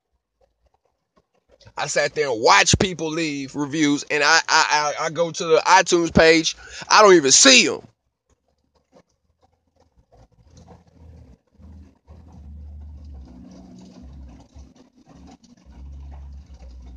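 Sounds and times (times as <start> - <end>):
18-wheeler truck engine roar passing by: 1.7 - 7.8, 10.2 - 16.9
speech: 1.8 - 7.9.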